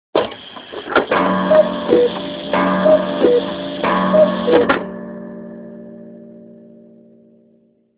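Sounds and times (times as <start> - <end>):
cuckoo ringtone on a mobile phone: 1.2 - 4.8.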